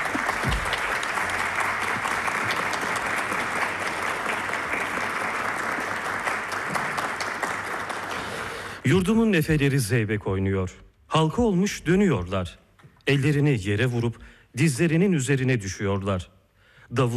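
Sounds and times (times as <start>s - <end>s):
audience applause at a Turkish folk music concert: 0.0s - 8.9s
speech: 8.9s - 16.3s, 16.9s - 17.1s.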